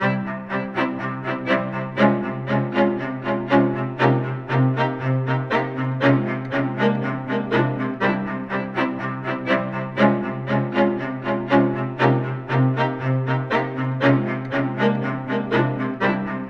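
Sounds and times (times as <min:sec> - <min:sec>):
strings with echo reverb: 0:00.0 - 0:16.4.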